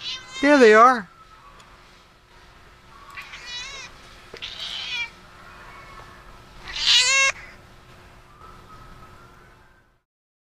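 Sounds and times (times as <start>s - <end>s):
cat meowing: 0.0s - 0.6s, 3.2s - 7.6s
speech: 0.4s - 1.1s.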